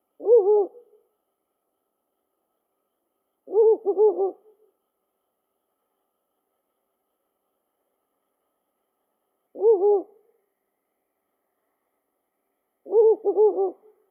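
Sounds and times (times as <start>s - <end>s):
owl hooting: 0.2s - 1.1s, 3.4s - 4.7s, 9.5s - 10.4s, 12.8s - 14.0s.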